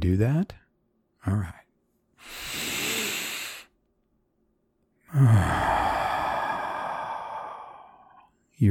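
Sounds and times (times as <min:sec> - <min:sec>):
speech: 0:00.0 - 0:00.6, 0:01.2 - 0:01.6, 0:05.1 - 0:05.8
person taking deep breaths during a calming breathing exercise: 0:02.2 - 0:03.8, 0:05.1 - 0:08.4.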